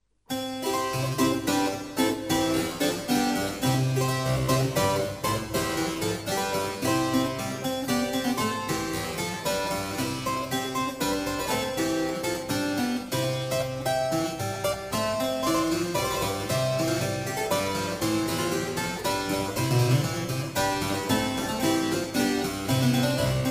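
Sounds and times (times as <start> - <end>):
harpsichords playing a ciaccona: 0.3 - 23.4.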